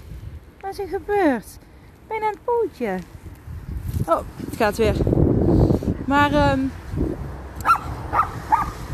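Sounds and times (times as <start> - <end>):
speech: 0.8 - 3.2, 4.1 - 6.8
dog giving short high-pitched barks: 7.6 - 8.8.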